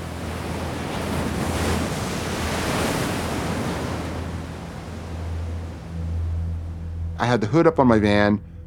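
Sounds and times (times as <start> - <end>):
ocean surf washing onto the shore: 0.0 - 6.8
speech: 7.2 - 8.5.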